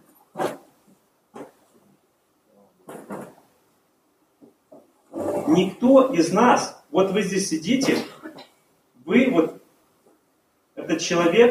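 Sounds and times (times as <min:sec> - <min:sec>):
faint room murmur: 0:00.0 - 0:11.4
wooden chairs being set down on a hard floor: 0:00.3 - 0:01.8, 0:02.8 - 0:03.5, 0:04.4 - 0:05.9
speech: 0:05.5 - 0:08.2, 0:11.0 - 0:11.4.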